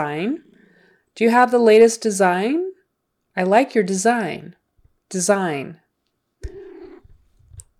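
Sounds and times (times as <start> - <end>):
speech: 0.0 - 0.5, 1.2 - 2.7, 3.4 - 5.8
cat meowing: 6.4 - 7.2
faint purr-like rumbles: 6.4 - 7.7
soft low rustling: 6.4 - 7.7.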